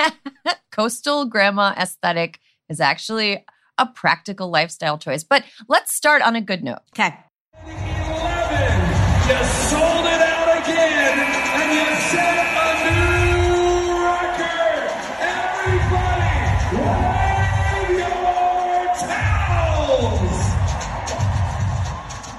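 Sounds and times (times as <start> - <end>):
speech: 0.0 - 7.9
crowd cheering at a professional women's basketball finals game: 7.6 - 22.3.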